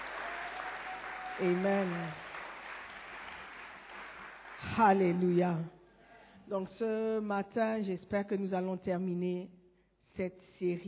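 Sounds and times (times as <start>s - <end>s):
congregation applauding during a church service: 0.0s - 5.2s
speech: 1.4s - 2.3s, 4.6s - 5.8s, 6.5s - 9.6s, 10.2s - 10.8s.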